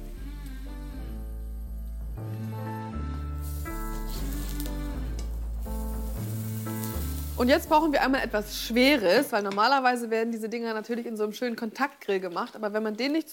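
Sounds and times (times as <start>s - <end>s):
music bed: 0.0s - 9.6s
folded Emmentaler cheese sandwich sizzling in a frying pan: 3.4s - 8.1s
speech: 7.4s - 13.3s.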